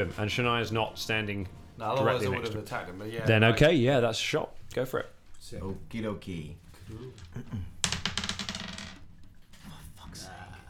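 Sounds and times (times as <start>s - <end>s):
speech: 0.0s - 7.8s
dice rolling on a table: 7.2s - 9.2s.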